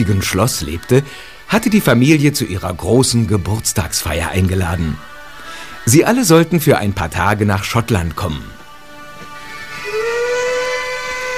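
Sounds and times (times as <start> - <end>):
speech: 0.0 - 5.1, 5.8 - 8.6
steam train whistle: 9.8 - 11.3.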